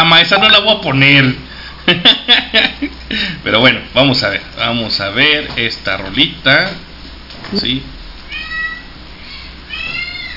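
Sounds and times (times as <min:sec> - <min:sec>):
low steady hum: 0:00.0 - 0:10.3
speech: 0:00.2 - 0:06.8, 0:07.5 - 0:08.0
laughter: 0:01.9 - 0:03.3
cat meowing for food: 0:08.3 - 0:10.3.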